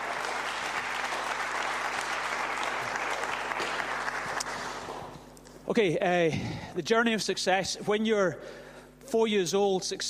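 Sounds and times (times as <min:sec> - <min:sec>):
large audience applauding: 0:00.0 - 0:05.1
speech: 0:05.7 - 0:10.0.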